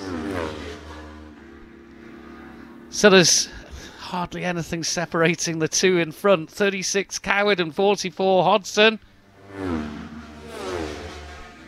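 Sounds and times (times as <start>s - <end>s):
twin-cylinder super twin racing motorcycles roaring past during a race: 0.0s - 4.1s, 9.0s - 11.6s
speech: 2.9s - 10.0s.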